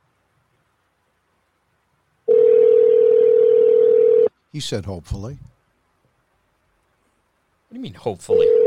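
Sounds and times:
telephone dial tone: 2.3 - 4.3, 8.4 - 8.6
speech: 4.5 - 5.6, 7.7 - 8.6.

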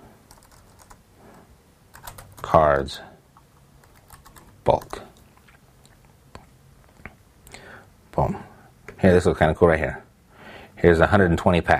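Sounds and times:
typing on a computer keyboard: 0.3 - 1.0, 1.9 - 2.5, 3.8 - 5.0
speech: 2.4 - 3.1, 4.7 - 5.0, 9.0 - 10.0, 10.8 - 11.7.

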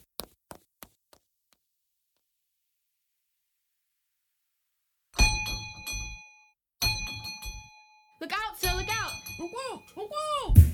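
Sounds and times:
bell ringing loudly: 5.2 - 10.1
speech: 9.4 - 10.6.

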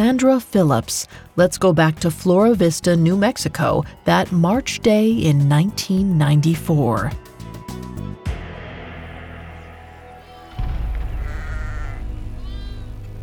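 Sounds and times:
speech: 0.0 - 7.3
flock of sheep bleating: 10.2 - 13.2.

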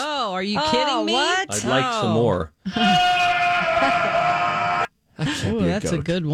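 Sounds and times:
speech: 0.4 - 3.2, 3.8 - 4.4, 5.2 - 6.3
goat bleating: 2.7 - 4.9.

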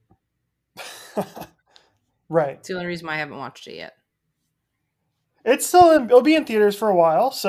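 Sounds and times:
raspy coughing fit: 0.8 - 1.6
speech: 1.2 - 1.5, 2.3 - 4.0, 5.5 - 7.4.

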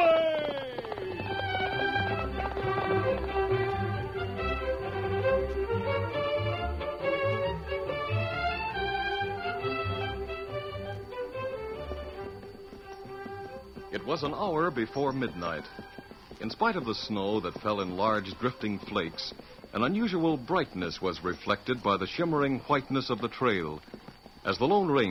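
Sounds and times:
horse hoofbeats galloping: 0.0 - 25.0
loud sweeping orchestral music: 1.1 - 16.1
speech: 14.1 - 25.0.

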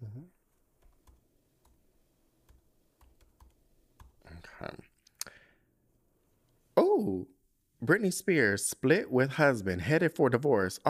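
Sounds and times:
typing on a computer keyboard: 0.8 - 1.8, 2.5 - 4.2
speech: 7.9 - 10.8.

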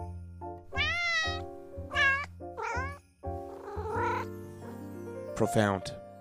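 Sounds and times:
male pet cat meowing: 0.7 - 4.3
speech: 5.4 - 6.0.

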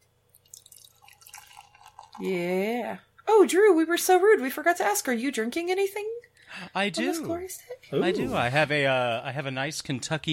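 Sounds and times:
beer of 8.2% alcohol by volume poured into a glass, splashing and fizzing: 0.3 - 2.7
speech: 2.2 - 10.3.

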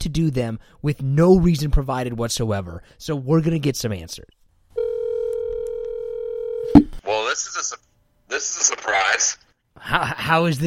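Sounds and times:
speech: 0.0 - 4.4, 6.8 - 10.6
telephone dial tone: 4.8 - 6.8.

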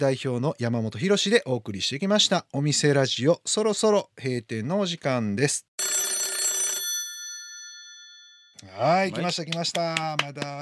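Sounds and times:
speech: 0.0 - 6.2, 8.6 - 10.6
electronic telephone ringing: 5.8 - 8.6.

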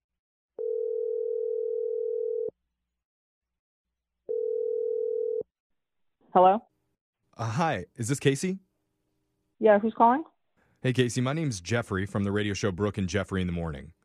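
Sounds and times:
telephone dial tone: 0.6 - 2.5, 4.3 - 5.4
speech: 6.4 - 6.7, 7.4 - 8.7, 9.6 - 14.0.

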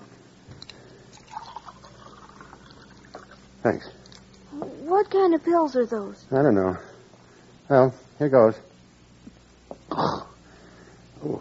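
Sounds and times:
water pouring into a glass: 0.6 - 4.2
speech: 3.6 - 3.9, 4.9 - 6.9, 7.7 - 8.7.

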